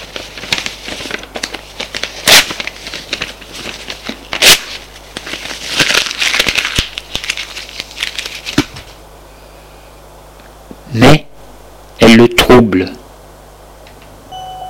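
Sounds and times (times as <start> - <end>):
paper letter being torn up: 0.0 - 9.0
speech: 12.2 - 13.0.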